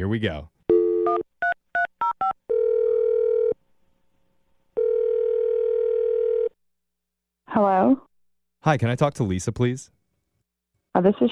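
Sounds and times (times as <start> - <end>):
speech: 0.0 - 1.2, 7.6 - 10.0, 11.0 - 11.2
long steady telephone ringing tone: 0.7 - 3.6, 4.8 - 6.6.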